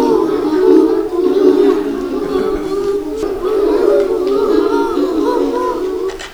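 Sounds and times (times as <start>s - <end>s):
great horned owl in a park: 0.0s - 6.3s
laughter: 0.0s - 6.3s.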